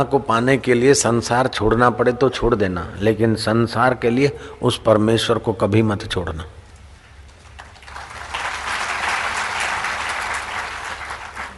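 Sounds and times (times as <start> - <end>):
speech: 0.0 - 6.6
audience applause: 7.5 - 11.5.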